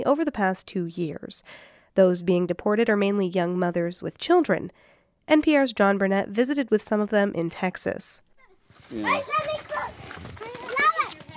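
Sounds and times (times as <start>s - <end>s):
speech: 0.0s - 9.9s
children chattering and calling out outdoors: 8.4s - 11.3s.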